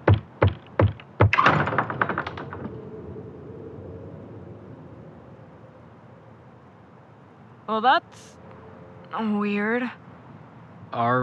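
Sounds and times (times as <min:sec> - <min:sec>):
firm knocking on a door: 0:00.0 - 0:02.5
clattering: 0:00.0 - 0:02.9
speech: 0:07.7 - 0:08.4, 0:09.1 - 0:10.0, 0:10.9 - 0:11.2.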